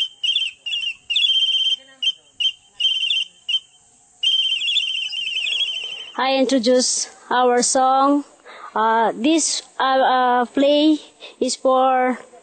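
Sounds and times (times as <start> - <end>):
shrill high-pitched Aita flute music played to call birds: 0.0 - 6.2
whistling imitating bird calls: 0.0 - 6.2
speech: 6.2 - 12.3.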